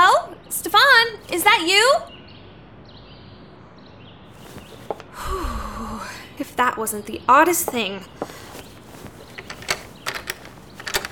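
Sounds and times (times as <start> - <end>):
speech: 1.3 - 2.1, 6.6 - 8.4
door swinging open with creaks and rattling clatters: 8.4 - 11.1.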